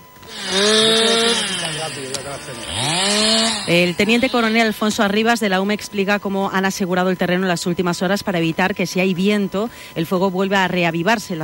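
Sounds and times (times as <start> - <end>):
chainsaw engine whining as it cuts into wood: 0.2 - 5.2
speech: 1.9 - 11.4.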